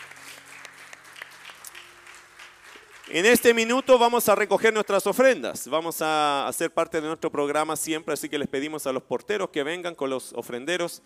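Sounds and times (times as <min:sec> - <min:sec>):
large audience applauding loudly: 0:00.0 - 0:05.0
speech: 0:03.1 - 0:11.0.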